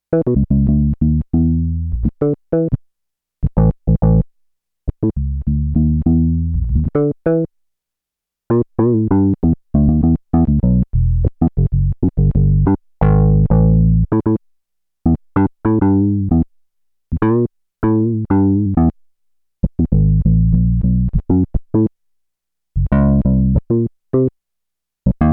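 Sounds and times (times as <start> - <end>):
E Bass Roland JX-8P: 0.2 - 2.2, 3.4 - 4.2, 4.9 - 7.1, 8.5 - 14.4, 15.1 - 16.5, 17.1 - 19.0, 19.6 - 21.9, 22.8 - 24.3, 25.1 - 25.3.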